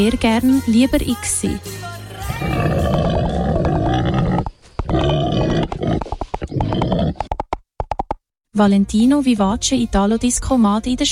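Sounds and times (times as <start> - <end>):
speech: 0.0 - 1.8, 8.6 - 11.1
pig grunting and snorting in a jingle: 2.1 - 7.3
galloping clip-clop rhythm: 5.9 - 8.2.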